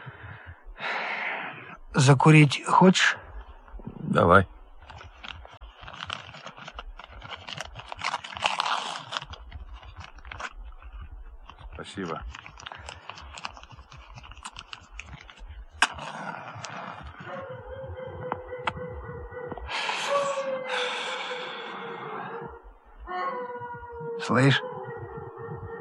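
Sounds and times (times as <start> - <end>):
breathy noises: 0.0 - 2.4, 3.0 - 24.6
speech: 2.0 - 3.2, 4.1 - 4.6
soft rustling: 4.5 - 18.7
distant dog howling in a village: 17.2 - 25.8.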